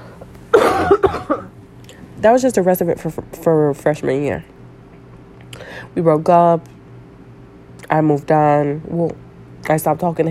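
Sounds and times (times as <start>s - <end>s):
person coughing: 0.5s - 1.5s
speech: 2.2s - 4.6s, 6.0s - 6.8s, 7.9s - 10.2s.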